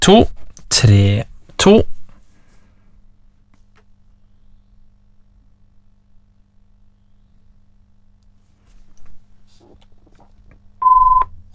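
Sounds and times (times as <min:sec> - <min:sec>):
speech: 0:00.1 - 0:02.0
telephone ringing as electronic beep during a bingo game: 0:10.8 - 0:11.3.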